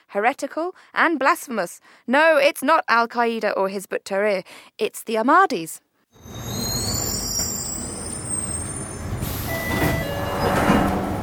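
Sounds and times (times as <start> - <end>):
speech: 0.1 - 6.5
London Underground train rolling into Morden terminus station: 6.2 - 11.2
London Underground train brakes hissing air: 7.0 - 10.0.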